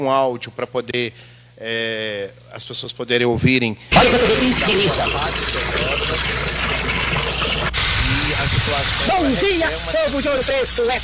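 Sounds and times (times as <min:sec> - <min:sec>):
speech: 0:00.0 - 0:06.1, 0:09.2 - 0:11.0
water gushing from a tap: 0:03.9 - 0:11.0.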